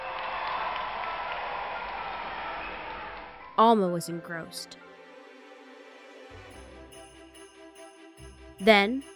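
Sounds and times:
large crowd cheering and clapping at a street parade: 0.0 - 3.5
speech: 3.6 - 4.9, 8.6 - 9.1.

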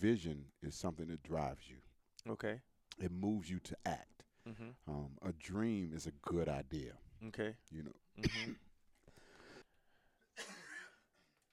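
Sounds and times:
speech: 0.0 - 8.7
rough breathy coughs: 8.2 - 8.7, 10.4 - 11.1.

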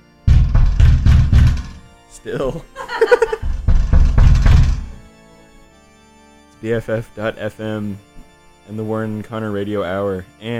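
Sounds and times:
heavy knocking on a door: 0.3 - 1.9, 3.0 - 5.0
speech: 2.2 - 3.3, 6.6 - 8.1, 8.7 - 10.5
person laughing: 2.6 - 3.6.

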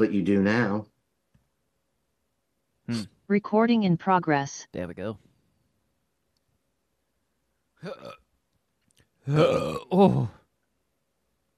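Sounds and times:
speech: 0.0 - 0.9, 2.9 - 5.3, 7.8 - 8.2, 9.3 - 10.4
drawn-out gurgling belch: 7.8 - 8.2, 9.3 - 10.3
person burping: 7.8 - 8.2, 9.3 - 10.3.

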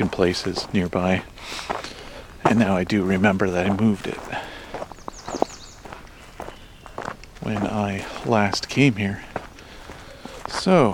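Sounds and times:
speech: 0.0 - 1.7, 2.5 - 4.5, 7.5 - 9.3, 10.6 - 10.9
soft crunching footsteps on an outdoor walk: 0.0 - 10.9
faint high bird chirps: 4.8 - 7.2.

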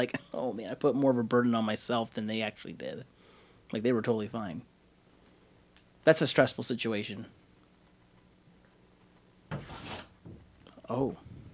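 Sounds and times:
speech: 0.0 - 4.7, 6.0 - 7.4, 10.9 - 11.2
animal claws scraping a wooden door: 9.5 - 10.4.

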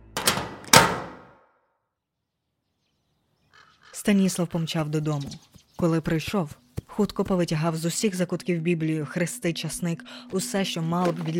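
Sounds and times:
door slamming shut: 0.1 - 1.4
door rattling scrape: 0.2 - 1.3
speech: 4.0 - 11.3.

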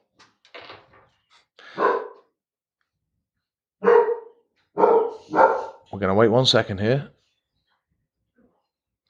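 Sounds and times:
dog barking: 1.7 - 2.2, 3.8 - 5.9
speech: 6.0 - 7.2.

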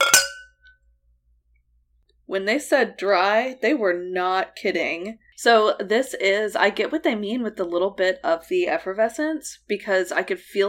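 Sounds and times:
wine glasses clinking in a toast: 0.0 - 0.6
speech: 2.3 - 10.6.

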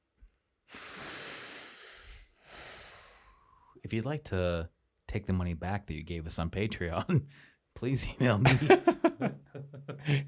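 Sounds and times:
two people breathing quietly: 0.7 - 3.8, 7.3 - 7.6
speech: 3.9 - 10.2.

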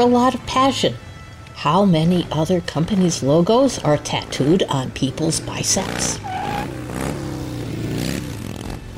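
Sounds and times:
speech: 0.0 - 6.8
motorcycle engine revving: 2.8 - 8.9.

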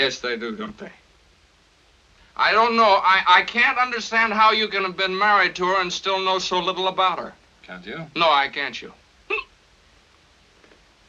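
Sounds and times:
speech: 0.0 - 1.0, 2.4 - 9.4
hiss: 0.0 - 11.0
hiccup: 9.3 - 9.6.

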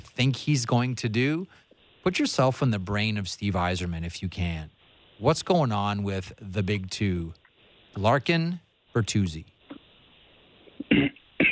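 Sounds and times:
speech: 0.2 - 7.4, 8.0 - 9.5
faint throat-clearing rasp: 10.8 - 11.5
person coughing: 10.9 - 11.5.

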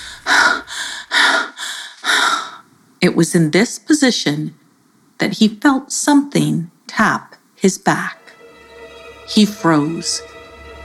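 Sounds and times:
heavy breathing of a man who has just stopped running: 0.0 - 2.6
speech: 3.0 - 4.6, 5.2 - 8.2, 9.3 - 10.3.

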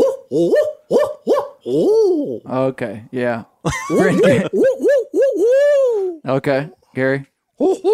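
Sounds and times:
person imitating owl hoots: 0.0 - 2.5, 4.0 - 6.3, 7.6 - 7.9
speech: 0.3 - 1.0, 1.6 - 5.0, 6.2 - 7.9
laughter: 3.7 - 4.6.

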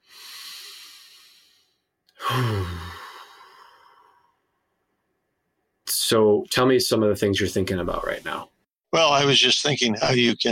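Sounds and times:
deep breathing during a guided breathing exercise: 0.0 - 4.5
speech: 2.3 - 2.9, 6.1 - 10.5.

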